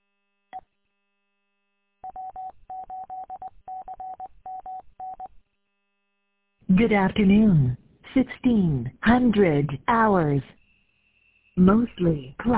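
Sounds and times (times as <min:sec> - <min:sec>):
short electronic telephone tones beeping: 0:02.0 - 0:05.3
speech: 0:06.7 - 0:10.6, 0:11.6 - 0:12.5.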